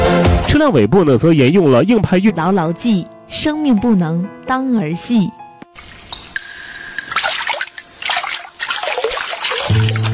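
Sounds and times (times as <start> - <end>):
speech: 0.6 - 5.9
water trickling from a tap: 5.8 - 10.1.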